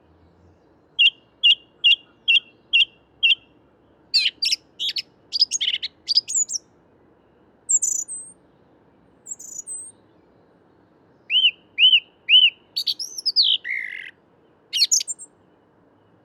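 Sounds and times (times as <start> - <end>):
song thrush singing whistled and scratchy notes at dawn in a Paris park woodland: 0.0 - 16.2.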